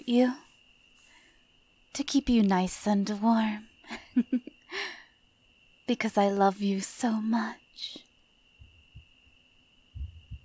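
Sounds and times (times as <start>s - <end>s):
faint steady hum: 0.0s - 10.4s
speech: 0.1s - 0.4s, 2.0s - 5.0s, 5.9s - 8.0s
low heartbeat thumps in a person's chest: 10.0s - 10.4s.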